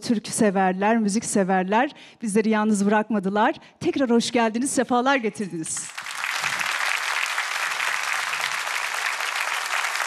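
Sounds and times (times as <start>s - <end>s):
speech: 0.0s - 6.0s
studio audience applause at a Turkish folk music television program: 5.8s - 10.0s.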